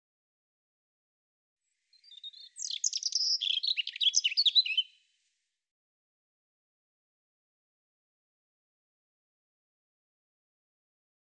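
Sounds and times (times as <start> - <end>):
European robin singing: 1.9 - 5.0.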